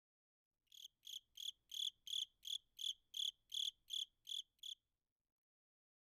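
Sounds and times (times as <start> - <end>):
cricket chirping: 0.7 - 4.8.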